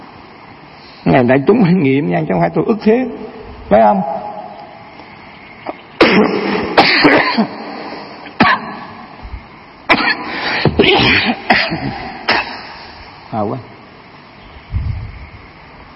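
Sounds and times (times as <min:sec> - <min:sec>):
faint steady hum: 0:00.0 - 0:15.9
speech: 0:01.0 - 0:04.2, 0:13.4 - 0:13.7
raspy throat clearing: 0:06.0 - 0:07.6, 0:09.9 - 0:12.7
person coughing from fluff in the throat: 0:06.0 - 0:07.7, 0:08.3 - 0:08.8, 0:09.9 - 0:12.8.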